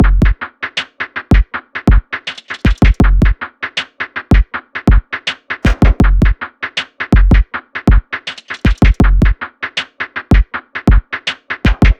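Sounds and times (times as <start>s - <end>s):
drums: 0.0s - 11.9s.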